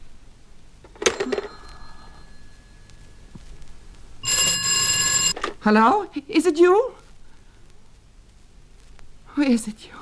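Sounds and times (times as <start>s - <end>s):
telephone on a shared line ringing: 1.0s - 3.2s, 4.2s - 5.4s
speech: 5.6s - 7.0s, 9.4s - 10.0s.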